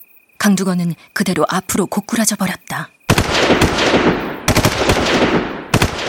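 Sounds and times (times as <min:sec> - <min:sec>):
speech: 0:00.4 - 0:04.2
loud gunfire bursts with decay: 0:03.1 - 0:06.0.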